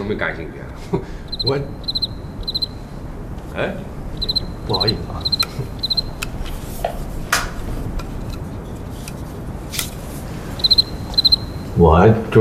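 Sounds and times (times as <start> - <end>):
low hiss: 0.0 - 12.3
speech: 0.1 - 2.0, 3.6 - 5.8, 11.8 - 12.3
cricket chirping in rapid trills: 1.0 - 6.5, 9.4 - 12.3.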